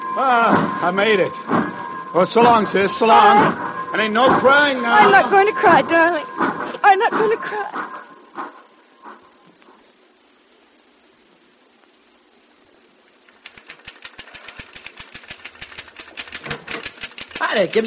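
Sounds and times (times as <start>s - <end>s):
quiet hiss: 0.0s - 17.8s
speech: 0.2s - 8.0s, 17.5s - 17.8s
typewriter clattering fast: 13.3s - 17.8s.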